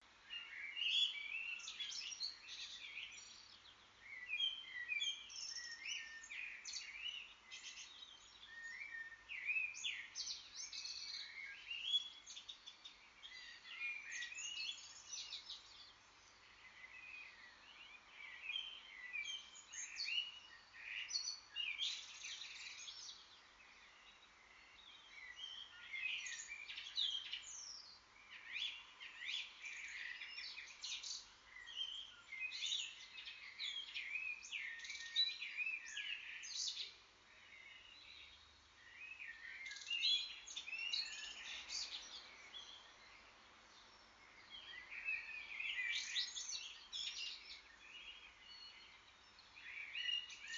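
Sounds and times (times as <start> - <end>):
morning chorus of birds: 0.0 - 50.5.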